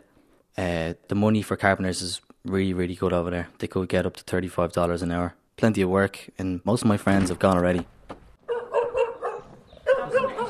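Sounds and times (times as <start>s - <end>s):
speech: 0.6s - 8.0s
dog barking: 8.4s - 10.4s.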